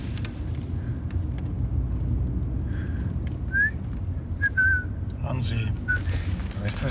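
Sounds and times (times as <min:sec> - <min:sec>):
low engine rumble: 0:00.0 - 0:06.8
person whistling: 0:04.4 - 0:04.9
speech: 0:05.4 - 0:05.8.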